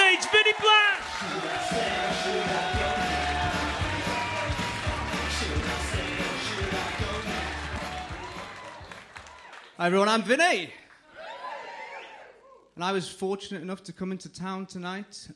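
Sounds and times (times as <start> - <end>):
room full of people clapping and cheering: 0.0 - 12.2
speech: 9.8 - 10.8, 12.8 - 15.3.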